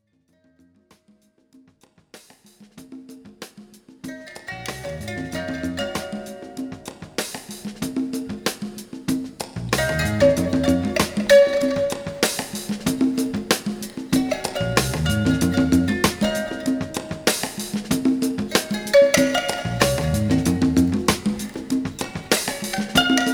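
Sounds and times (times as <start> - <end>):
valiha: 4.1 - 8.8, 9.6 - 23.3.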